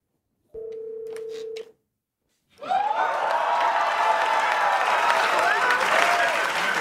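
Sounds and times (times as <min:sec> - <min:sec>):
phone tone: 0:00.6 - 0:01.7
television studio audience cheering and applauding: 0:02.6 - 0:06.7.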